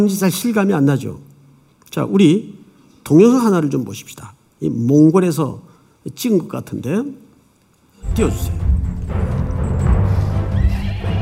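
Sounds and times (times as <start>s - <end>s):
speech: 0.0s - 1.3s, 1.9s - 7.2s, 8.0s - 9.2s
horse whinnying: 10.4s - 11.1s.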